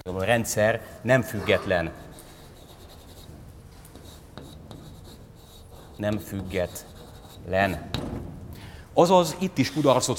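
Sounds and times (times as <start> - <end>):
speech: 0.0 - 2.1, 6.0 - 8.3, 9.0 - 10.1
handwriting an equation during a lecture: 1.4 - 7.5.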